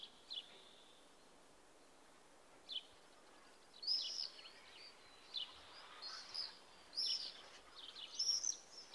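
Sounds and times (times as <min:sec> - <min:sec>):
background hiss: 0:00.0 - 0:08.9
Common swift calls: 0:03.9 - 0:08.9.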